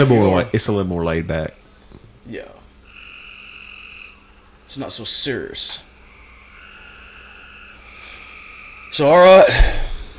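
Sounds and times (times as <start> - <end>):
speech: 0.0 - 1.6, 2.3 - 2.6, 4.7 - 5.9, 8.9 - 9.9
brief hiss of broadband noise: 0.0 - 10.1
chorus of frogs croaking outdoors at dusk: 2.4 - 10.1.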